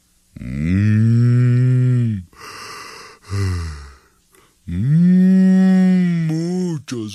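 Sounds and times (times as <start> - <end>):
voice imitating a spotted cow mooing: 0.4 - 2.4, 3.3 - 4.0, 4.7 - 6.6
breathy sighing: 0.4 - 5.4.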